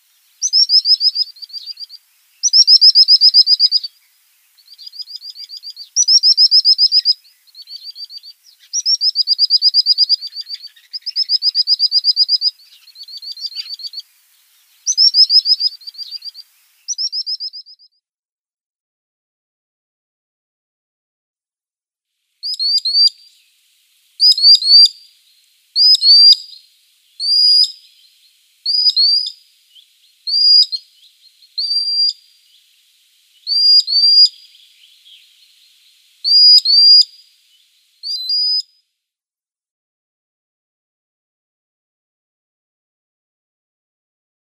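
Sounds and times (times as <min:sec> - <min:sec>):
common sandpiper calling: 0:00.0 - 0:17.9, 0:22.4 - 0:38.7.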